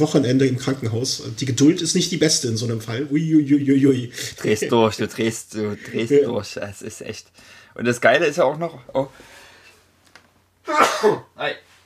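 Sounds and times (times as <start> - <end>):
speech: 0.0 - 9.4, 10.6 - 11.7
sneeze: 10.7 - 11.3.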